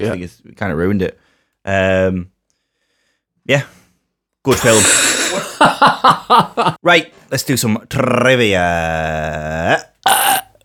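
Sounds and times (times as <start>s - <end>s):
speech: 0.0s - 2.3s, 3.5s - 3.8s, 4.4s - 10.2s
laughter: 4.5s - 6.8s
loud burps: 8.9s - 10.6s.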